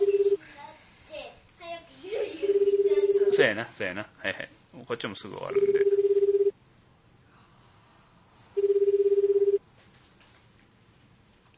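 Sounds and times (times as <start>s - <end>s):
telephone ringing: 0.0s - 0.4s, 2.4s - 3.4s, 5.5s - 6.6s, 8.6s - 9.6s
speech: 3.4s - 5.8s.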